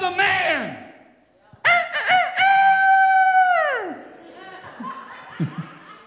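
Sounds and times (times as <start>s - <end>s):
person imitating a rooster crowing: 1.7s - 4.0s
laughter: 3.8s - 6.0s
speech: 5.4s - 5.6s.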